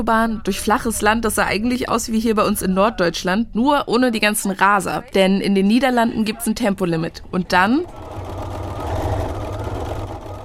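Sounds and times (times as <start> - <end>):
speech: 0.0 - 8.2
tailor's sewing machine sewing jeans in the Netherlands: 7.6 - 10.4.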